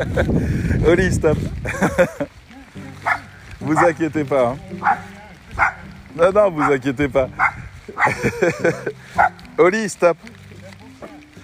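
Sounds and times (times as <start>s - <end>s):
laughter: 0.0s - 0.6s, 1.6s - 3.0s, 7.9s - 9.2s
speech: 0.0s - 2.4s, 3.7s - 5.1s, 6.2s - 7.4s, 8.0s - 9.0s, 9.6s - 10.3s
dog barking: 3.0s - 4.0s, 4.8s - 5.9s, 6.6s - 6.8s, 7.4s - 8.2s, 9.2s - 9.4s
dog whining and yelping: 3.0s - 4.0s, 4.8s - 5.8s, 7.4s - 8.1s.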